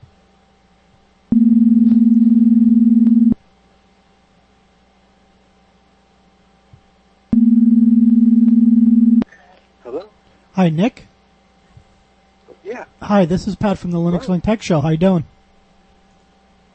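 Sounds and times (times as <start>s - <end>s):
telephone dial tone as a call is being placed: 1.3s - 3.4s, 7.4s - 9.2s
speech: 10.6s - 11.1s, 12.7s - 15.4s.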